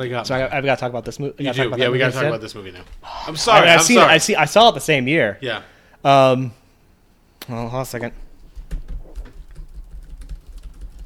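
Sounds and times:
speech: 0:00.0 - 0:06.6, 0:07.4 - 0:08.2
rapid typing on a computer keyboard: 0:08.6 - 0:11.0.

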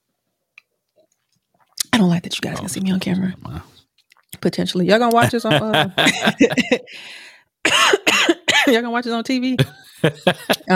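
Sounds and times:
person sipping a drink with wet mouth clicks and a slurp: 0:00.9 - 0:01.9
speech: 0:02.0 - 0:03.8, 0:04.4 - 0:10.7
laughter: 0:05.1 - 0:07.0, 0:09.6 - 0:10.7.

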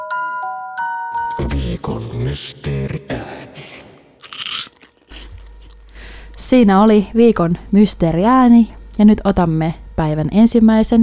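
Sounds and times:
speech: 0:01.4 - 0:03.8, 0:06.5 - 0:11.0
chewing: 0:04.2 - 0:05.8
wasabi-flavoured corn puff ball crunching: 0:04.2 - 0:05.8.

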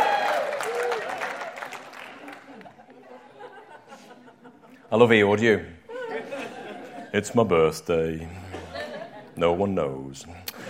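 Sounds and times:
audience applause: 0:00.0 - 0:02.8
laughter: 0:02.0 - 0:07.6, 0:08.2 - 0:09.6
speech: 0:04.9 - 0:05.8, 0:07.1 - 0:08.4, 0:09.4 - 0:10.5.

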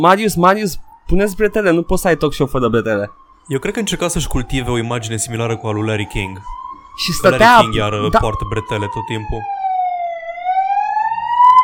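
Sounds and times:
speech: 0:00.0 - 0:09.6
police siren wailing: 0:00.0 - 0:11.6.

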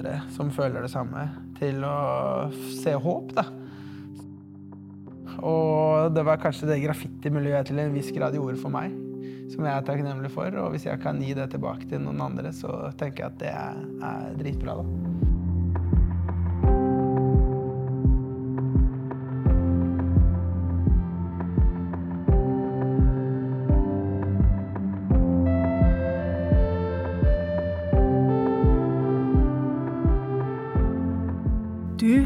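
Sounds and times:
speech: 0:00.0 - 0:03.6, 0:05.4 - 0:15.3
podcast theme music with throbbing low beat and sustained chords: 0:15.2 - 0:32.2.

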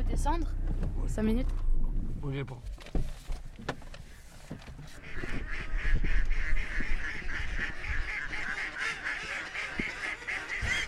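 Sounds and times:
speech: 0:00.1 - 0:03.7
mallard and wigeon ducks quacking and whistling: 0:05.0 - 0:10.8.

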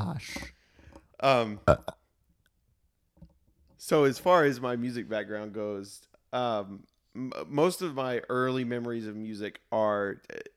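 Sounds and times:
speech: 0:00.1 - 0:00.6, 0:01.2 - 0:02.0, 0:03.8 - 0:10.5
person burping into the microphone: 0:01.2 - 0:02.1.

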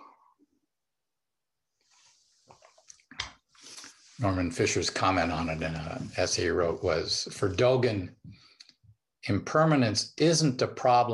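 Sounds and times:
quiet sipping of water: 0:02.0 - 0:04.3
person gulping water: 0:02.5 - 0:03.9
speech: 0:04.2 - 0:08.4, 0:09.3 - 0:11.1.

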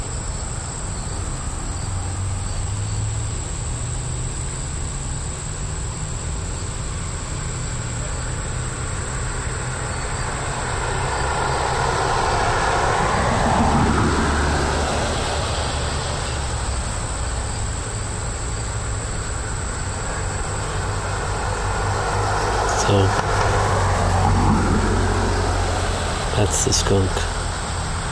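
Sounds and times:
insects chirping: 0:00.0 - 0:28.0
traffic noise: 0:00.0 - 0:28.0
vehicle passing by: 0:07.4 - 0:28.0
speech: 0:26.9 - 0:27.3.

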